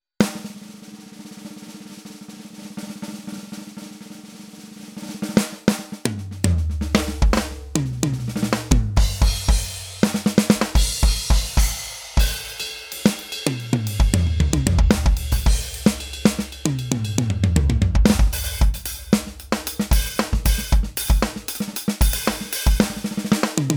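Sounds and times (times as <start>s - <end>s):
radio drum: 6.1s - 23.7s.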